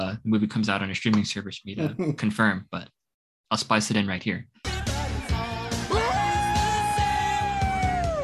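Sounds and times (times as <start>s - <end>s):
speech: 0.2s - 4.6s
person screaming after spiking a volleyball: 5.9s - 8.2s.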